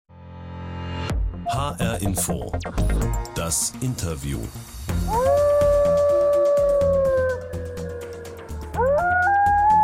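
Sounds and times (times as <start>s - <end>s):
rumbling rhythmic music bed: 1.1s - 9.8s
speech: 1.5s - 5.4s
wolf howling: 5.0s - 9.8s.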